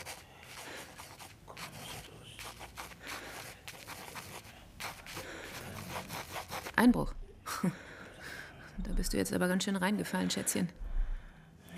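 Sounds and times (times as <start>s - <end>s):
pencil writing on paper: 0.0s - 6.9s
speech: 6.8s - 7.8s, 9.1s - 10.9s.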